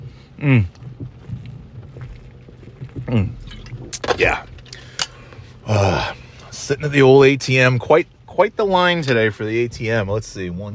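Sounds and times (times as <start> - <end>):
person gulping while drinking: 0.0 - 6.6
speech: 0.4 - 0.8, 3.1 - 3.6, 4.2 - 4.5, 5.7 - 10.7
liquid sloshing and pouring: 0.8 - 5.6
breathy satisfied vocal sighs: 4.7 - 6.5.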